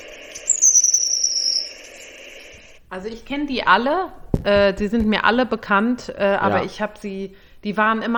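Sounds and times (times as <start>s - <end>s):
long-tailed tit alarm call: 0.0s - 2.0s
soft background hiss: 0.0s - 8.1s
speech: 2.9s - 8.1s.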